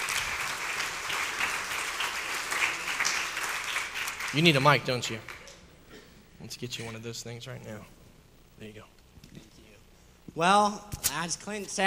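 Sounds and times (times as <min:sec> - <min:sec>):
crowd applause: 0:00.0 - 0:05.5
speech: 0:04.3 - 0:05.3, 0:06.4 - 0:08.0, 0:08.6 - 0:09.5, 0:10.4 - 0:11.8.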